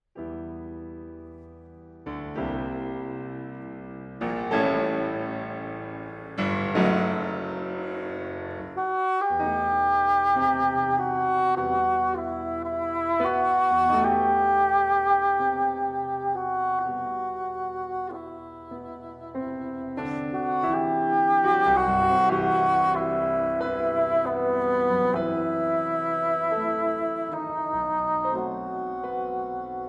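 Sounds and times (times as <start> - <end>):
piano: 0.0 - 29.8
bassoon: 6.4 - 29.8.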